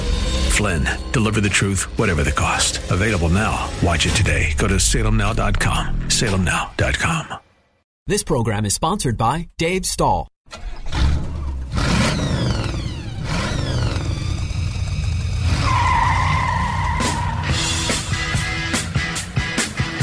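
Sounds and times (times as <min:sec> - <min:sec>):
speech: 0:00.6 - 0:07.4, 0:08.0 - 0:10.8
car engine revving hard: 0:10.6 - 0:19.6
car tires skidding and squealing: 0:11.8 - 0:17.9.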